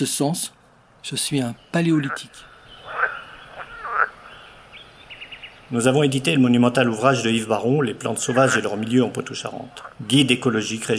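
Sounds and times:
speech: 0.0 - 2.5, 5.7 - 10.9
frogs croaking in chorus: 1.2 - 10.9.

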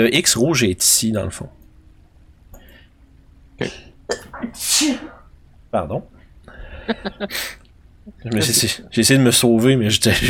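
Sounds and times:
speech: 0.0 - 1.6, 3.6 - 6.2, 6.9 - 10.2
loud hissing sneeze: 3.7 - 5.3
sharp catching breaths: 6.2 - 7.7
laughter: 6.6 - 8.8.

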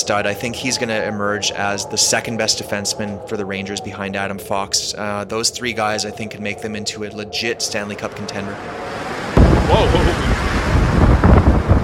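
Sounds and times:
voice: 0.0 - 8.6
speech: 0.0 - 10.6
strong gust of wind buffeting microphone: 0.0 - 11.8.

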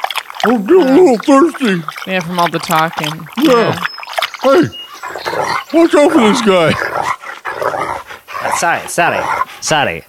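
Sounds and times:
speech: 0.4 - 6.9, 8.5 - 10.0
dog growling and barking: 5.0 - 9.5.

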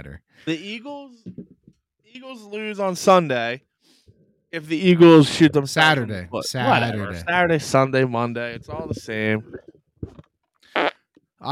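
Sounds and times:
speech: 0.0 - 3.7, 4.5 - 9.7, 10.8 - 11.5
soundboard fart sound effects: 8.4 - 10.9.

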